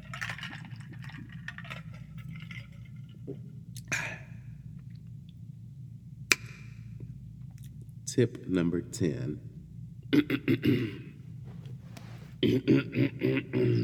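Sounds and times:
low hum: 0.0 - 13.8
speech: 8.2 - 9.5, 10.3 - 11.1, 12.4 - 13.8
person sipping a drink: 11.4 - 12.4.

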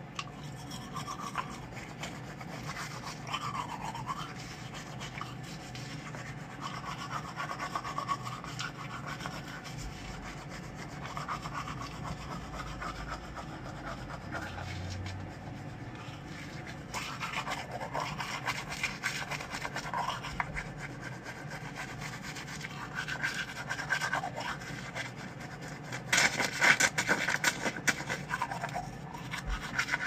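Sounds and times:
toothbrush brushing teeth: 0.1 - 30.0.

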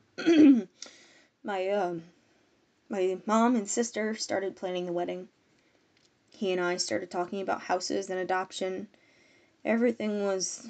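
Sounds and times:
man clearing his throat: 0.2 - 0.7
speech: 1.4 - 2.2, 2.9 - 5.4, 6.4 - 9.0, 9.6 - 10.6.

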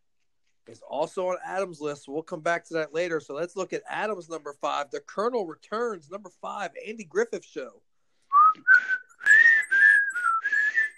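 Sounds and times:
speech: 0.7 - 7.8, 8.6 - 8.9
people whistling a bouncy cheerful TV show theme melody: 8.3 - 10.9.

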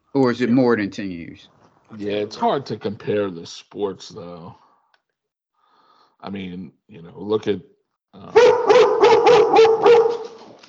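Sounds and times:
speech: 0.1 - 4.6, 6.2 - 10.6
dog barking: 8.3 - 10.4.

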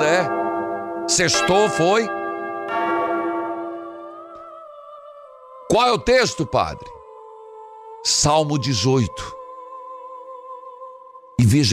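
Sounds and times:
church bell ringing: 0.0 - 5.1
speech: 1.1 - 2.2, 5.7 - 7.0, 8.0 - 9.4, 11.4 - 11.7.

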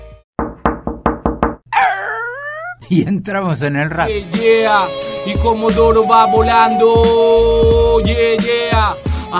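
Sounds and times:
knocks on a door: 0.4 - 1.6
speech: 2.9 - 9.3.

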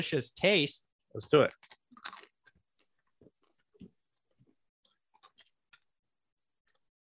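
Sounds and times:
speech: 0.0 - 1.8
crunchy chewing of a shelled snack: 1.5 - 6.0.

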